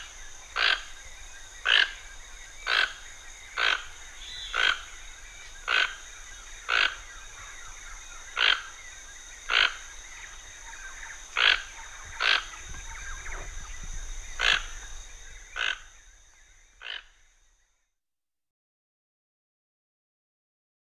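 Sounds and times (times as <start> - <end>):
toucan giving short hoarse croaks in the Pantanal: 0.0 - 1.0, 1.6 - 2.0, 2.6 - 5.0, 5.6 - 6.0, 6.6 - 7.1, 8.4 - 8.8, 9.5 - 9.9, 11.3 - 16.0, 16.8 - 17.2.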